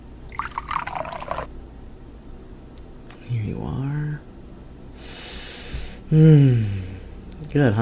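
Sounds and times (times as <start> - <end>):
quiet hum: 0.0 - 7.8
wine pouring into a glass: 0.2 - 1.5
speech: 6.1 - 6.8, 7.6 - 7.8.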